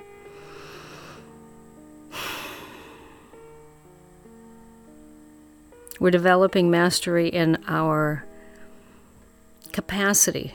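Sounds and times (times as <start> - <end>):
deep breath: 0.3 - 1.4, 2.1 - 3.6, 8.3 - 9.3
speech: 6.0 - 8.3, 9.8 - 10.5.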